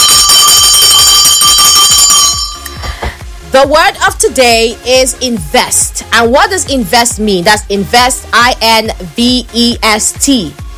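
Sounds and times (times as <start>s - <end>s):
bell ringing rapidly in place of a drum roll: 0.0s - 2.9s
speech: 3.6s - 10.7s.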